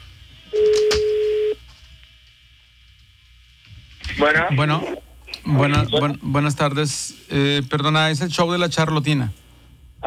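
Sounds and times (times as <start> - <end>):
steady electronic telephone ring tone beep: 0.5 - 1.6
speech: 4.2 - 9.4.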